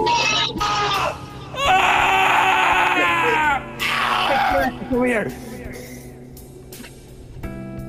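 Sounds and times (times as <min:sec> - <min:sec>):
child screaming: 0:00.0 - 0:04.8
speech: 0:05.2 - 0:05.5.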